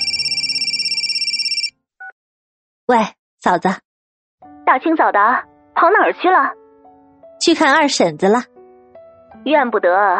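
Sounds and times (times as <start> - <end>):
mobile phone ringing with a rapid pulsing electronic ringtone: 0.0 - 1.7
speech: 2.9 - 3.8, 4.7 - 6.6, 7.4 - 8.5, 9.4 - 10.1.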